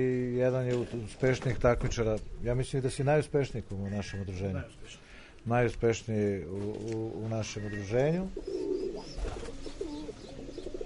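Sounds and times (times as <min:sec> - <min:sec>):
speech: 0:00.0 - 0:08.6
racing pigeons cooing in their loft: 0:07.2 - 0:10.8.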